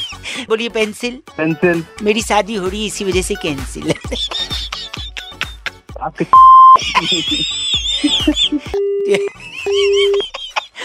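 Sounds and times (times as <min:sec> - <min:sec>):
speech: 0:00.3 - 0:04.6, 0:06.0 - 0:10.3
laughter: 0:03.8 - 0:05.8, 0:06.8 - 0:10.8
telephone busy tone after a call drops: 0:06.4 - 0:06.8.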